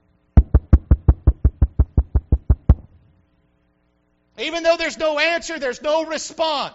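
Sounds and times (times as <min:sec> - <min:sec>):
firm knocks on a wooden door: 0:00.4 - 0:02.9
speech: 0:04.4 - 0:06.7.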